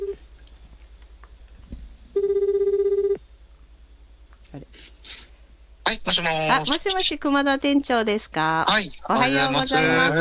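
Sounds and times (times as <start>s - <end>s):
telephone ringback tone while calling a store manager: 0.0s - 0.2s, 2.2s - 3.2s
speech: 6.1s - 10.1s.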